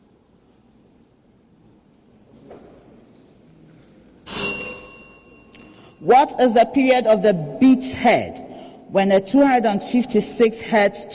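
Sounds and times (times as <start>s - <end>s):
quiet room noise: 0.0s - 11.1s
quiz bell ringing: 4.3s - 6.1s
speech: 6.0s - 11.1s.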